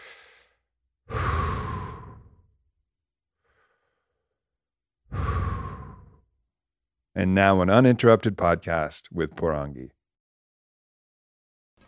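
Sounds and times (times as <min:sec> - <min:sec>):
deep breaths being taken slowly: 0:00.0 - 0:02.6, 0:03.4 - 0:04.4, 0:05.1 - 0:06.3
speech: 0:07.2 - 0:10.0.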